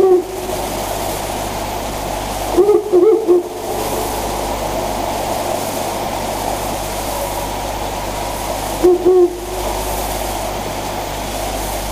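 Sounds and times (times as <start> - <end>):
owl hooting: 0.0 - 0.6, 2.5 - 4.9, 8.8 - 9.8
constant hiss: 0.0 - 11.9.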